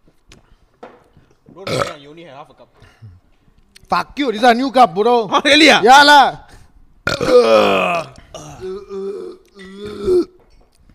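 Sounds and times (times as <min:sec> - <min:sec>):
loud burp: 0:01.6 - 0:02.0, 0:07.0 - 0:10.4
speech: 0:01.6 - 0:03.2, 0:03.9 - 0:06.4, 0:07.2 - 0:08.1.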